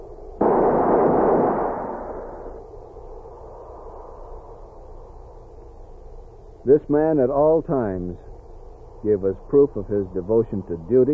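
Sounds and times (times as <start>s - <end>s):
rifle volley fired by a squad at a military funeral: 0.4s - 2.6s
speech: 6.7s - 8.3s, 9.0s - 11.1s.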